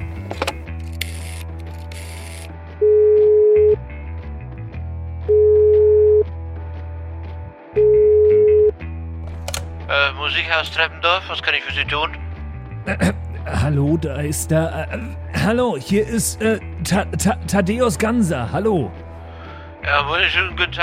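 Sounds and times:
telephone in a kitchen being dialed, mechanical clicking and whirring: 0.4 - 2.5
telephone ringing tone: 2.8 - 3.8, 5.3 - 6.3, 7.8 - 8.7
speech: 10.4 - 12.2, 12.8 - 19.0, 19.8 - 20.8.

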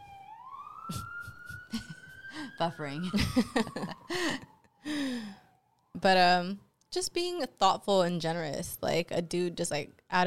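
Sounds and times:
emergency vehicle siren passing by: 0.0 - 7.0
speech: 0.9 - 1.1, 2.4 - 4.5, 6.0 - 10.2.

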